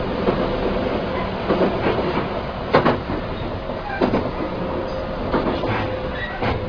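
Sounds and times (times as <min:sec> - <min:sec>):
local commuter train arriving at Wakayama Station Japan rolling on rails: 0:00.0 - 0:06.6
brief squeals of train: 0:06.1 - 0:06.6.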